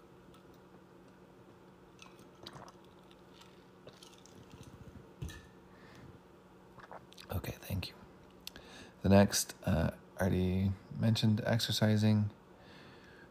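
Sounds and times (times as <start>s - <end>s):
person sipping water: 1.9s - 5.1s, 6.7s - 7.3s
gulping swallows of water: 2.0s - 4.4s
speech: 9.0s - 12.4s.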